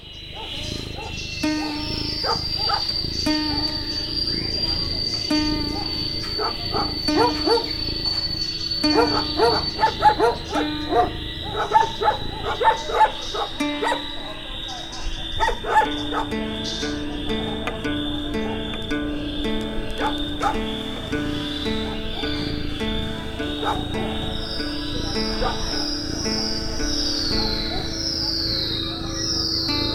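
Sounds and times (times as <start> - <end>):
steady high-pitched drone: 0.0 - 29.9
dog barking: 0.3 - 3.8, 5.4 - 14.6, 15.4 - 16.4, 20.0 - 20.7, 23.5 - 24.2, 25.2 - 26.0, 27.2 - 28.2
speech: 8.9 - 14.1, 15.4 - 17.3.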